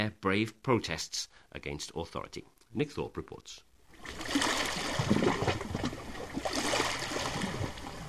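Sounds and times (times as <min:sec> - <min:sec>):
speech: 0:00.0 - 0:05.3
Danube River in Hungary flowing along the shore: 0:03.9 - 0:08.0.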